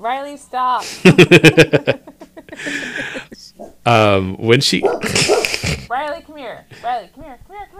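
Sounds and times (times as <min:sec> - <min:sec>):
speech: 0:00.0 - 0:02.1, 0:03.9 - 0:05.4
laughter: 0:00.8 - 0:03.4, 0:05.0 - 0:05.9
dog barking: 0:03.6 - 0:03.9, 0:04.7 - 0:05.6.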